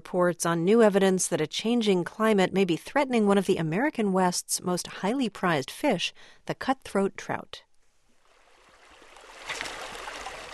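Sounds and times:
speech: 0.1s - 7.7s
small cold mountain stream flowing in the Shields Basin Montana: 8.2s - 10.5s.

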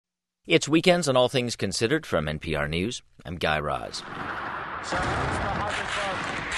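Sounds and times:
speech: 0.4s - 6.5s
sharp gunshot in Syria: 4.0s - 6.5s
sustained gunfire in Syria: 4.0s - 6.5s.

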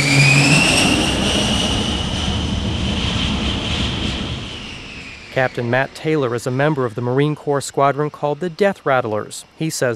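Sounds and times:
jet aircraft engine roaring on an aircraft carrier flight deck: 0.0s - 9.9s
speech: 5.4s - 9.9s.

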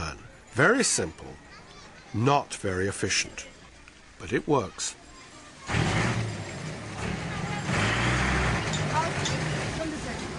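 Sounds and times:
speech: 0.6s - 3.5s, 4.2s - 5.0s
truck engine rumbling down a narrow lane: 5.0s - 10.3s.

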